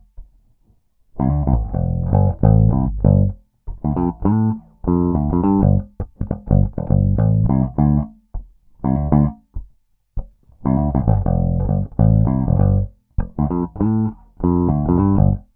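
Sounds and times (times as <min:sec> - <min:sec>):
electric guitar humbucker pickup tone with tone control down: 0:01.2 - 0:08.1, 0:10.7 - 0:15.5.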